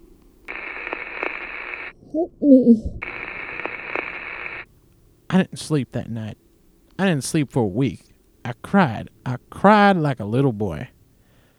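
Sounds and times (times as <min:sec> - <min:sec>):
band-limited hiss of open phone-line static: 0:00.0 - 0:02.2, 0:03.0 - 0:11.5
speech: 0:02.1 - 0:03.1, 0:05.3 - 0:06.4, 0:07.0 - 0:11.0.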